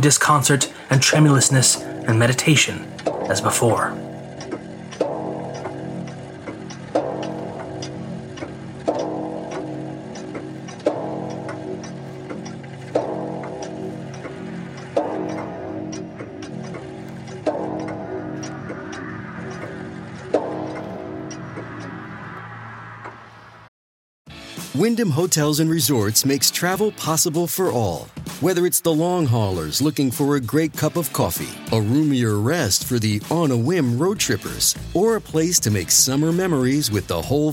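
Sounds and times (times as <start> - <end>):
speech: 0.0 - 4.1, 25.0 - 37.5
clock chiming: 0.0 - 23.2, 24.8 - 37.5.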